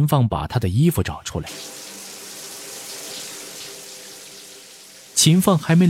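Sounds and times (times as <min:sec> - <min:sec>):
speech: 0:00.0 - 0:01.8, 0:05.2 - 0:05.8
water running in a bathroom shower: 0:01.4 - 0:05.8.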